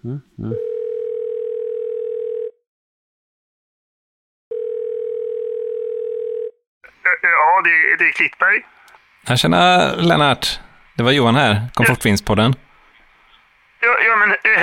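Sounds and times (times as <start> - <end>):
speech: 0.0 - 0.7, 7.6 - 12.6, 13.8 - 14.6
telephone ringback tones of an outgoing call: 0.6 - 2.6, 4.5 - 6.6.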